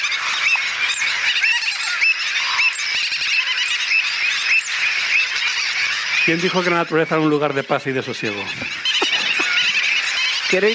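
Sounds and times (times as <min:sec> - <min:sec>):
noisy mixed colony of terns, gulls, avocets, stilts and flamingos calling: 0:00.0 - 0:10.7
speech: 0:06.3 - 0:08.8, 0:10.5 - 0:10.7
laughter: 0:08.2 - 0:10.1.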